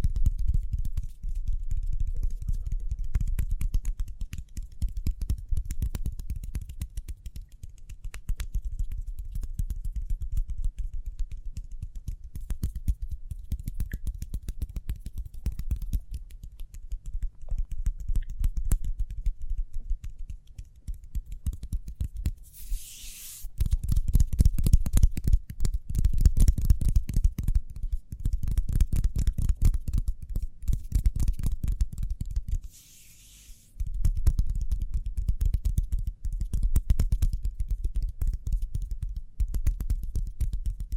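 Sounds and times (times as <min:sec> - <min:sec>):
hands tapping and rubbing: 0:00.0 - 0:40.9
hissing swipe: 0:22.5 - 0:23.5, 0:32.7 - 0:33.7.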